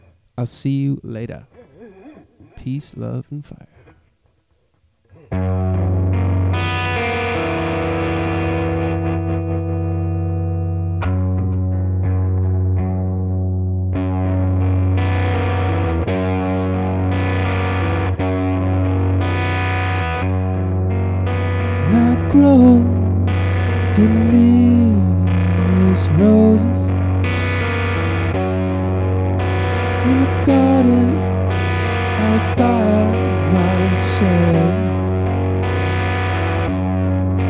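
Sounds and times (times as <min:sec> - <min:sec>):
speech: 0:00.4 - 0:01.5, 0:02.5 - 0:03.7
electric guitar with distortion and chorus effects playing slow ringing chords: 0:05.1 - 0:37.4
steady low drone: 0:14.1 - 0:37.4.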